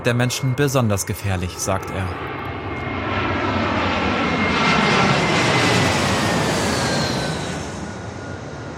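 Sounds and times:
speech: 0.0 - 2.4
airliner engine roar moving onto the runway: 0.0 - 8.7.

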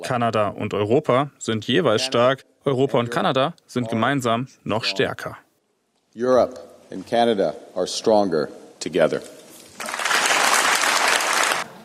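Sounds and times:
speech: 0.0 - 5.4, 6.1 - 9.9
applause in the European Parliament in Strasbourg: 9.8 - 11.7.

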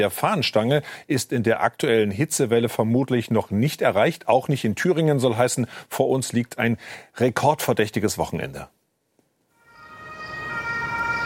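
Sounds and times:
speech: 0.0 - 8.8
ambulance siren arriving at a hospital emergency department in Sömmerda, Germany: 9.6 - 11.2.

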